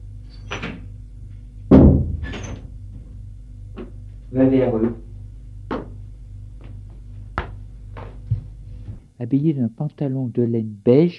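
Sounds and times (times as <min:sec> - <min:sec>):
bedroom door solid wooden thud and knock: 0:01.7 - 0:02.7
speech: 0:04.3 - 0:05.0, 0:09.2 - 0:11.1.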